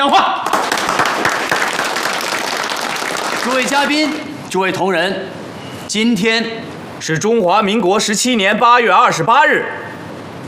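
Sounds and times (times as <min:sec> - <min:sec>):
audience applause at a coal mining company founding ceremony: 0:00.4 - 0:04.0
speech: 0:03.6 - 0:10.0.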